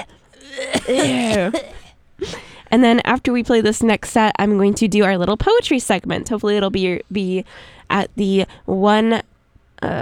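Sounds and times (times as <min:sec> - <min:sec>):
rough throaty cough: 0:00.0 - 0:02.4
speech: 0:00.9 - 0:01.8, 0:02.7 - 0:09.9.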